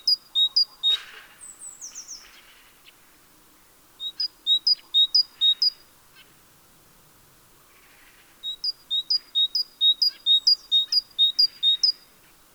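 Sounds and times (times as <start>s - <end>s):
great tit Parus major singing two-note phrases: 0.0s - 1.0s, 4.0s - 5.7s, 8.4s - 12.0s.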